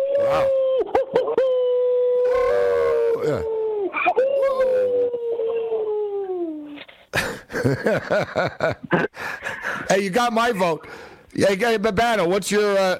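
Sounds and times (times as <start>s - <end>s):
person imitating a wolf howl: 0.0s - 6.8s
speech: 0.3s - 0.6s, 7.6s - 12.9s
laughter: 7.2s - 9.8s.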